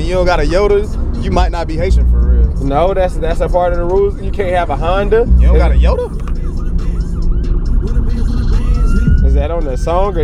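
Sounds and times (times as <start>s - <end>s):
steady low rumble of traffic: 0.0s - 10.2s
speech: 0.1s - 6.3s, 9.4s - 10.2s
ambulance siren wailing in rising-and-falling sweeps outside: 4.8s - 10.2s.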